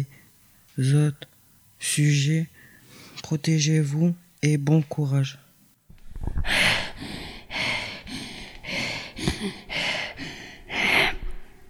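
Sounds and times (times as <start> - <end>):
speech: 0.8 - 2.5, 3.2 - 5.4
woman breathing heavily out of breath from running while wearing a mask: 2.6 - 3.2, 6.4 - 11.6.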